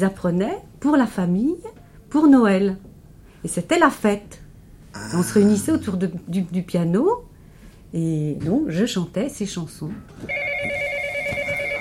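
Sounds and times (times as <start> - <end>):
speech: 0.0 - 4.4, 5.0 - 7.3, 7.9 - 10.8
telephone ringing with shrill electronic tone: 10.3 - 11.7.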